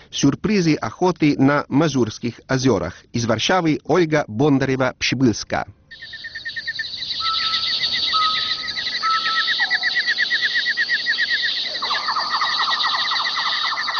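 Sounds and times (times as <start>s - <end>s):
speech: 0.1s - 6.3s
dense chorus of birds chirping in a forest: 5.9s - 13.9s.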